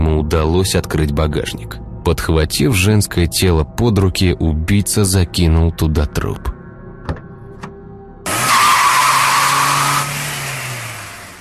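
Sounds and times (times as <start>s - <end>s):
speech: 0.4s - 6.5s
car tires squealing: 8.3s - 11.4s.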